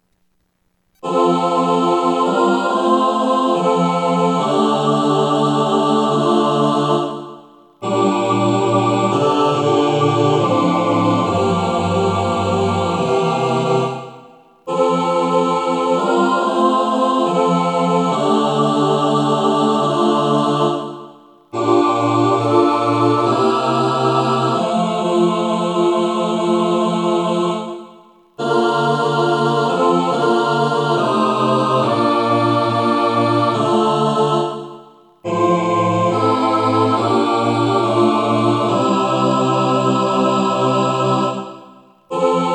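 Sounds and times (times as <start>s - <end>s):
SATB choir singing: 1.0s - 42.5s.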